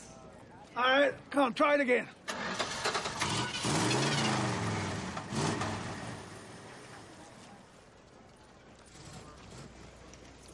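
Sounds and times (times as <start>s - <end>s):
speech: 0.8s - 2.2s
car engine cranking and starting: 2.3s - 7.0s.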